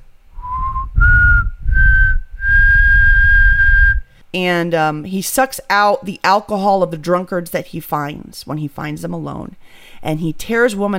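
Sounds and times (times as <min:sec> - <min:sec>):
person whistling an eerie tune imitating a legendary figure's ghostly whistle: 0:00.4 - 0:04.1
speech: 0:04.4 - 0:10.9.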